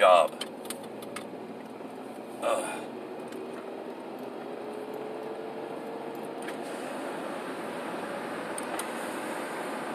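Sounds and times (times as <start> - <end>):
car engine and road hum heard inside the vehicle: 0.0 - 9.9
car turn signal hyperflashing ticking due to a tail light out: 0.2 - 2.3, 2.9 - 6.5.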